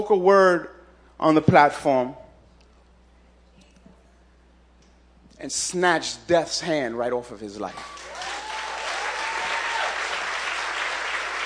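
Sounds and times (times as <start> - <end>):
speech: 0.0 - 2.2, 5.4 - 8.0
applause: 7.7 - 11.4.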